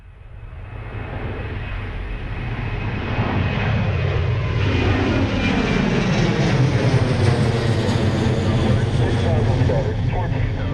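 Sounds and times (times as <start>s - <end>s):
airplane engine drone: 0.0s - 10.7s.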